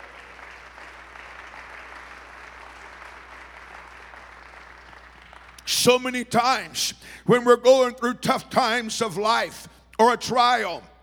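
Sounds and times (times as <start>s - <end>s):
audience applause from many people: 0.0s - 5.7s
speech: 5.7s - 10.9s.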